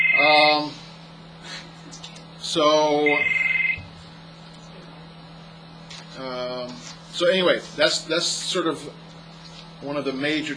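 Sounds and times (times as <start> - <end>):
electronic phone ringtone with an incoming call: 0.0 - 0.4, 3.0 - 3.8
constant low hum: 0.0 - 10.5
speech: 2.5 - 3.4, 6.2 - 9.0, 9.8 - 10.5.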